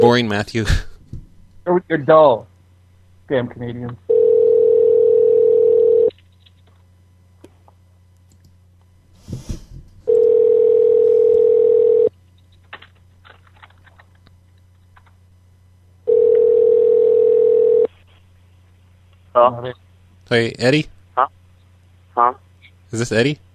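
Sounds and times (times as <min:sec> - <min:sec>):
speech: 0:00.0 - 0:00.9, 0:01.6 - 0:02.5, 0:03.3 - 0:04.0, 0:19.4 - 0:21.4, 0:22.2 - 0:23.4
loud steady telephone tone: 0:04.1 - 0:06.1, 0:10.1 - 0:12.1, 0:16.1 - 0:17.9.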